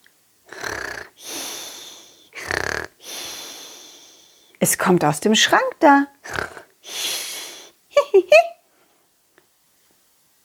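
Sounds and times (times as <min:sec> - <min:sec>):
person snoring loudly: 0:00.5 - 0:04.5, 0:06.2 - 0:07.7
speech: 0:04.6 - 0:06.4.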